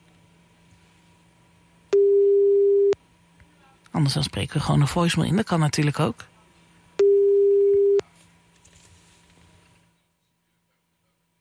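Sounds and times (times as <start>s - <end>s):
quiet phone line hum: 0.0s - 11.3s
ringback tone from an outgoing phone call: 2.0s - 3.0s, 7.0s - 8.0s
speech: 4.0s - 6.3s.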